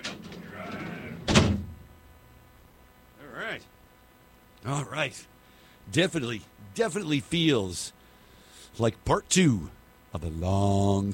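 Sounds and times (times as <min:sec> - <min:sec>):
heavy door rumbling along its track: 0:00.0 - 0:01.8
speech: 0:04.6 - 0:08.0, 0:08.7 - 0:11.1.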